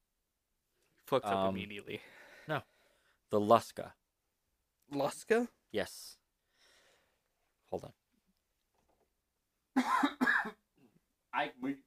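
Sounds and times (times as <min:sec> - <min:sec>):
speech: 0:01.1 - 0:02.7, 0:03.3 - 0:04.0, 0:04.9 - 0:06.2, 0:07.7 - 0:08.0, 0:09.8 - 0:10.6, 0:11.4 - 0:11.8
person coughing in harsh voiced bursts: 0:09.8 - 0:10.7.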